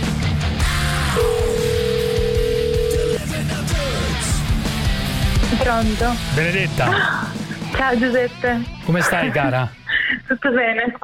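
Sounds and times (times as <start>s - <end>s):
busy music: 0.0s - 11.0s
steady electronic telephone beep as a line is dialed: 1.2s - 3.2s
speech: 5.7s - 7.2s, 7.8s - 11.0s.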